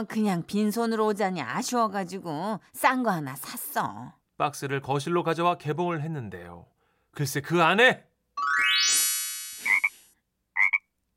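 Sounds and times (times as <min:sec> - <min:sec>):
speech: 0:00.0 - 0:08.7
cartoonish frog croak effect: 0:09.6 - 0:11.0.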